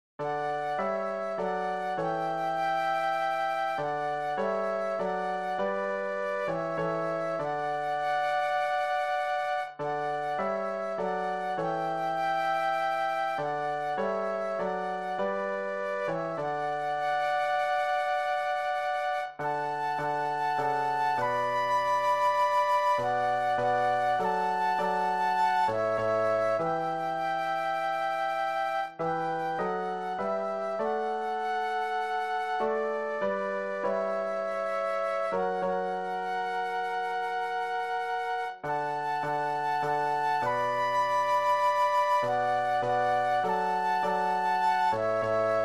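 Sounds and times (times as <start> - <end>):
flute duet: 0.2 - 45.6
piano: 0.2 - 45.6.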